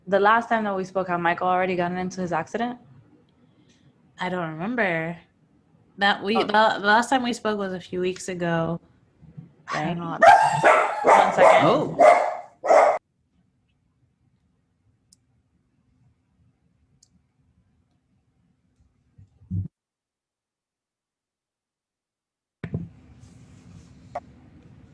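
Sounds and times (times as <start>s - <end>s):
speech: 0.1s - 2.9s, 4.2s - 5.3s, 6.0s - 8.9s, 9.7s - 12.2s
dogs barking loudly at a noise outside: 9.7s - 13.0s.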